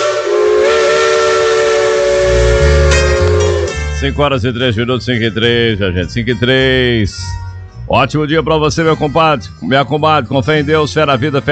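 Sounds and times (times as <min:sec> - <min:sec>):
rumbling hissing steam train: 0:00.0 - 0:04.2
steam locomotive whistle blowing a long sustained blast: 0:00.0 - 0:04.2
speech: 0:04.0 - 0:11.4.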